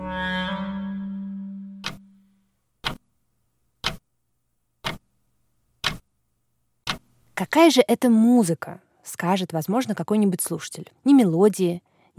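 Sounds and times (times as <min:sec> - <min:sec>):
clock ticking: 0:01.8 - 0:02.1, 0:02.8 - 0:03.1, 0:03.8 - 0:04.1, 0:04.8 - 0:05.2, 0:05.8 - 0:06.1, 0:06.8 - 0:07.2
speech: 0:07.4 - 0:12.1.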